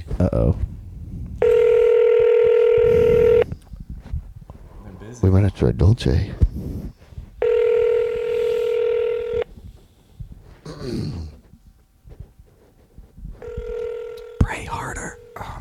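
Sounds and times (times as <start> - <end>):
speech: 0.2 - 0.7, 5.2 - 6.4
ringback tone of an unanswered phone call to a pizza restaurant: 1.4 - 3.5, 7.4 - 9.5, 13.4 - 15.5.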